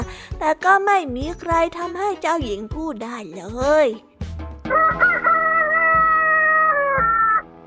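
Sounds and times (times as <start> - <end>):
speech: 0.4 - 4.1
rooster crowing: 4.7 - 7.4.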